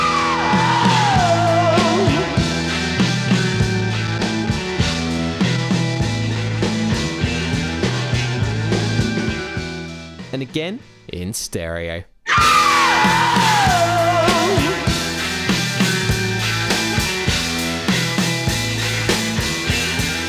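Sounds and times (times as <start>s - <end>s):
loud dense rock song with guitar: 0.0s - 10.3s, 12.3s - 20.2s
speech: 10.5s - 13.8s.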